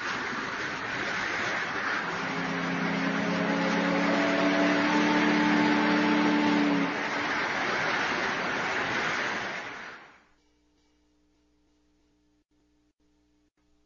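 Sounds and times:
low droning hum: 0:00.0 - 0:09.9
engine noise: 0:00.0 - 0:10.2
water rushing: 0:00.0 - 0:10.2.

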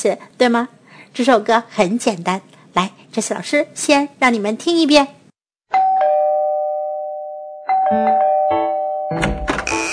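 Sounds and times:
speech: 0:00.0 - 0:05.2
doorbell chiming ding-dong tones: 0:05.7 - 0:09.8.

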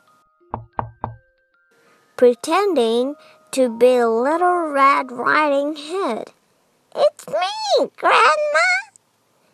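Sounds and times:
firm knocks on a wooden cottage door: 0:00.5 - 0:01.2
faint steady hum: 0:01.6 - 0:09.5
speech: 0:02.2 - 0:08.8.

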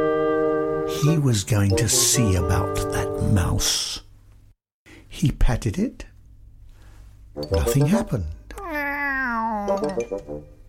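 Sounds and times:
speech: 0:00.9 - 0:04.1, 0:05.1 - 0:06.1, 0:07.4 - 0:08.4, 0:09.7 - 0:10.6
person imitating cat meow: 0:08.5 - 0:10.0.

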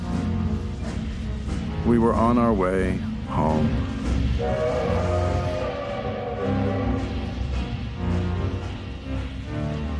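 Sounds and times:
train rumbling on rails: 0:00.0 - 0:09.9
speech: 0:01.8 - 0:05.1
train horn blast: 0:04.4 - 0:07.6.

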